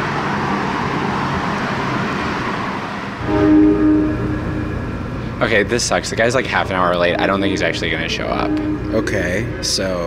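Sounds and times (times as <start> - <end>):
subway train rumbling through a station: 0.0 - 10.0
sustained tonal horn or brake whine of a subway train: 3.2 - 10.0
speech: 5.4 - 10.0.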